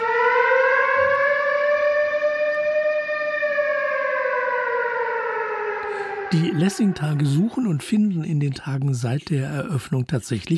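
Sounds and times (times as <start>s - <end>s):
air raid siren wailing: 0.0s - 8.4s
speech: 6.3s - 10.5s.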